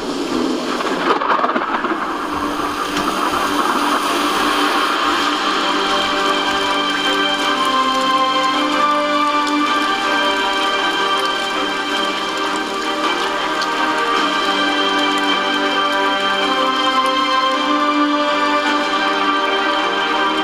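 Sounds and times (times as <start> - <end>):
steady rain falling: 0.0 - 20.4.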